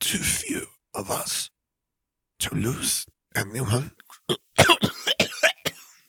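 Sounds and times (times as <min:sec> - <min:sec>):
speech: 0:00.1 - 0:01.5, 0:02.4 - 0:04.4
woman with a raw wet cough: 0:04.3 - 0:06.0.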